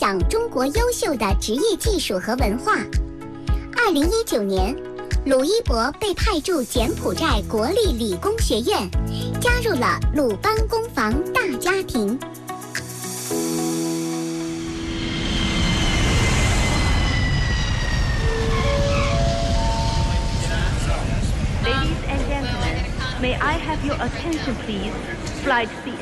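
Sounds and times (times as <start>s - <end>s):
speech: 0.1s - 3.1s, 3.9s - 12.4s, 23.2s - 26.0s
airplane jet engine at airport spooling up: 12.8s - 24.7s
broadband rush of airport noise: 14.3s - 26.0s.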